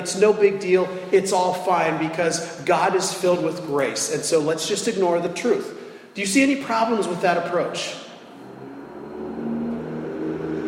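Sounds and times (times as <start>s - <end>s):
speech: 0.0s - 8.0s
loud truck driving by: 8.2s - 10.6s.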